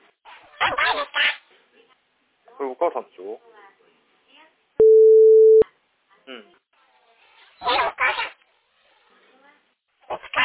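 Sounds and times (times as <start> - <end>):
speech: 2.6 - 3.5, 6.3 - 6.5
telephone line tone during a call from a family home to a mobile phone: 4.8 - 5.6.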